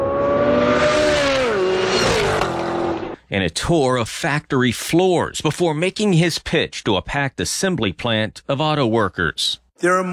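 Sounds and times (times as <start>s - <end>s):
car engine roaring during high-speed racing demonstration at Milford proving ground: 0.0s - 3.2s
speech: 3.3s - 10.1s.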